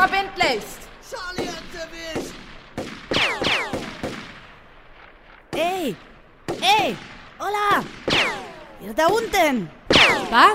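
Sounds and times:
speech: 0.0s - 0.8s, 8.9s - 10.5s
gunshots: 0.0s - 10.5s
high falling ricochet whine: 2.2s - 10.5s.

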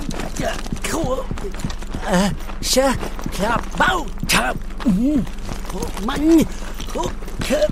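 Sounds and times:
running footsteps: 0.0s - 7.7s
speech: 0.4s - 7.7s.

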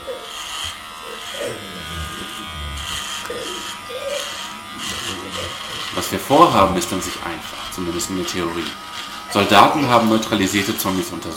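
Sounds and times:
electric razor shaving a patient's head: 0.0s - 11.3s
speech: 6.2s - 11.3s.

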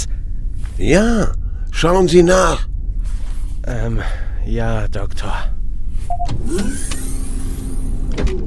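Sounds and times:
steady low mechanical hum of a hovering shuttle: 0.0s - 8.4s
speech: 0.8s - 2.7s, 3.6s - 5.6s, 6.2s - 7.0s, 8.2s - 8.4s
motorized shuttle door sliding open: 6.1s - 8.4s.

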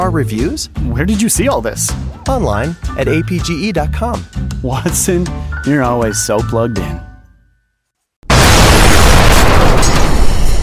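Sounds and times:
speech: 0.0s - 7.1s
shell explosion hitting an artillery gun: 8.3s - 10.6s.

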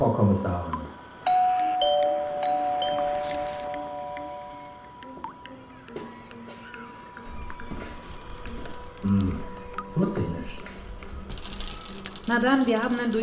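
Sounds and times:
speech: 0.0s - 0.8s, 9.0s - 9.5s, 12.3s - 13.2s
doorbell chiming: 1.2s - 4.7s.

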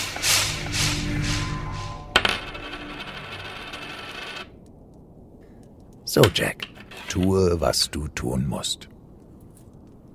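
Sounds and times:
shimmering, swelling whooshes: 0.0s - 4.3s
speech: 6.1s - 8.9s.

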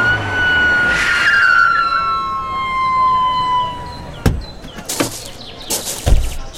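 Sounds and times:
ambulance siren wailing: 0.0s - 4.6s
sharp knocks and clatters: 4.2s - 6.5s.

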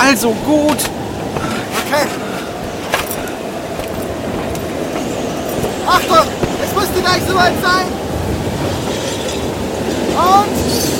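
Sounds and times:
moving train rumble: 0.0s - 10.9s
speech: 0.1s - 1.1s, 1.9s - 2.3s, 5.9s - 8.0s, 10.2s - 10.9s
metallic clinks and rattles: 2.9s - 4.7s.

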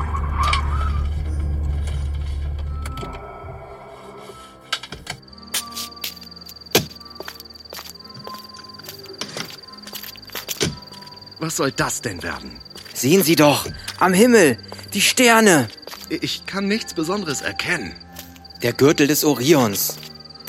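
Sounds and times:
car engine rumble: 0.0s - 3.7s
crickets chirping: 3.2s - 20.4s
speech: 11.5s - 18.0s, 18.6s - 20.0s.

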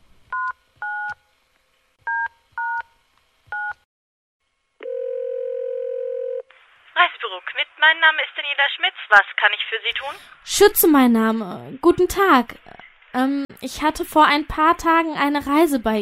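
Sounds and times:
steady ringing tone on the phone line: 4.8s - 6.5s
speech: 7.6s - 16.0s.

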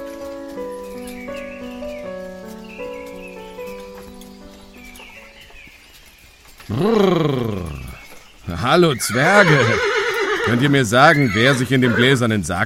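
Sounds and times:
soft sustained music: 0.0s - 6.7s
horse hooves clip-clopping at a steady trot: 0.0s - 12.6s
speech: 6.7s - 7.8s, 8.5s - 12.6s
horse whinnying: 6.7s - 12.2s.

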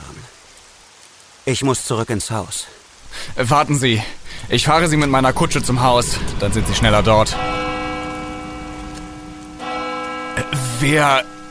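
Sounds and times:
speech: 1.5s - 7.6s, 10.5s - 11.4s
church bell ringing: 4.5s - 11.4s.

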